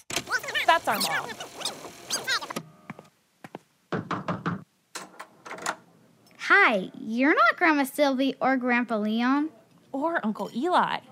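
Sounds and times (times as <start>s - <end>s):
speech: 0.8s - 1.6s, 6.7s - 11.0s
knocking on a door: 3.9s - 4.7s.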